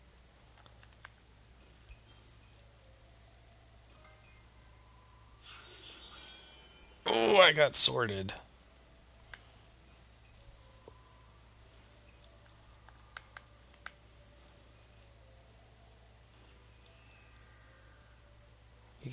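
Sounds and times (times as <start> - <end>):
low electrical hum: 0.0 - 19.1
computer keyboard clicks: 0.2 - 2.7, 11.7 - 16.0
speech: 7.4 - 8.5.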